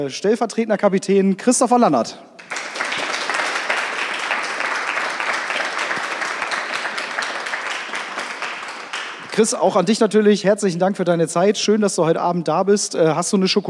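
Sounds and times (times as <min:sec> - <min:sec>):
speech: 0:00.0 - 0:02.5, 0:09.4 - 0:13.6
live audience applauding to welcome guest: 0:02.4 - 0:09.6.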